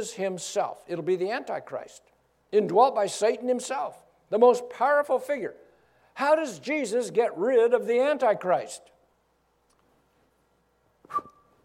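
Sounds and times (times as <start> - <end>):
speech: 0.0 - 5.6, 6.2 - 8.9
person whistling a short breathy whistle: 11.0 - 11.6.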